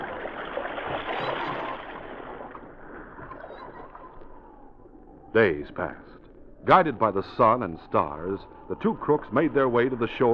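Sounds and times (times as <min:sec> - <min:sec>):
oars rowing a boat through water: 0:00.0 - 0:04.6
speech: 0:05.3 - 0:10.3.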